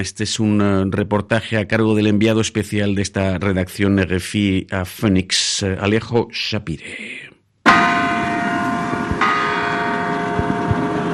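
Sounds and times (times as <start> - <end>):
speech: 0.0 - 7.2
church bells ringing: 7.7 - 11.1.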